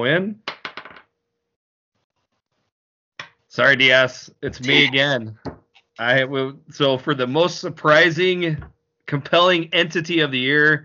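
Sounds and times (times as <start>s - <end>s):
speech: 0.0s - 0.5s, 3.6s - 10.8s
dice being rolled: 0.5s - 1.1s.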